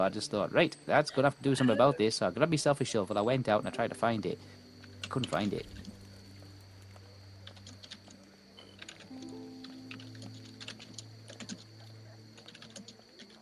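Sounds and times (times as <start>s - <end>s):
speech: 0.0s - 5.9s
steady low hum: 0.0s - 13.4s
typing hard on a computer keyboard: 7.4s - 13.4s.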